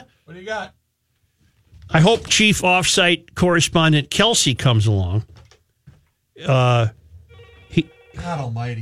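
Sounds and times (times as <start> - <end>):
speech: 0.3 - 0.8, 1.9 - 5.4, 6.4 - 7.0, 7.7 - 8.8
loud buzzing telephone ring: 7.3 - 8.6.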